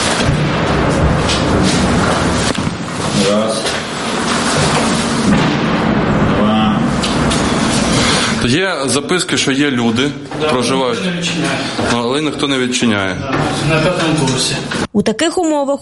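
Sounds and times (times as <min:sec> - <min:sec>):
nearby artillery fire booming: 0:00.0 - 0:09.4
speech: 0:08.5 - 0:15.8.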